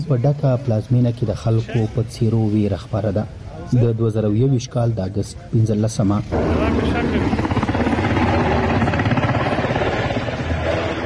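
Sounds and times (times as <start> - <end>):
speech: 0.0 - 7.6
helicopter flying over Kabul: 6.2 - 11.0.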